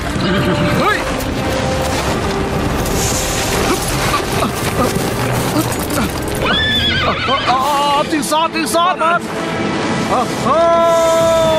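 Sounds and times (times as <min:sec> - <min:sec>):
steady busy clatter of horse hooves: 0:00.0 - 0:07.6
horse whinnying and neighing: 0:03.6 - 0:07.8
speech: 0:08.3 - 0:11.5.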